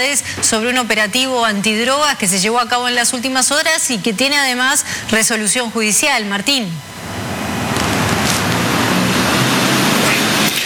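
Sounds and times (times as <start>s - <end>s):
speech: 0.0s - 7.1s
heavy cold rain pouring down outdoors: 6.9s - 10.6s.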